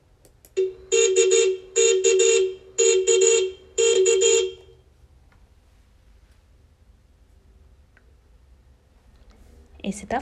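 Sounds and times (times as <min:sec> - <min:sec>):
car horn beeping: 0:00.6 - 0:04.8
speech: 0:09.9 - 0:10.2.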